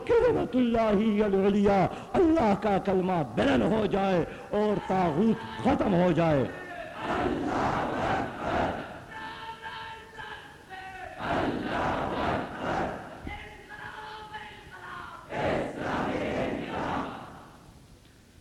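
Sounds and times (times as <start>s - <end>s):
speech: 0.0s - 8.0s
large crowd chanting revolutionary slogans: 6.6s - 14.0s, 14.8s - 17.6s.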